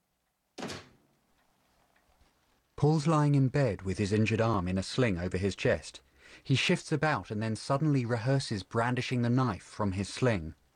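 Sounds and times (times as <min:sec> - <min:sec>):
door closing with a thunk: 0:00.6 - 0:01.0
speech: 0:02.8 - 0:10.6.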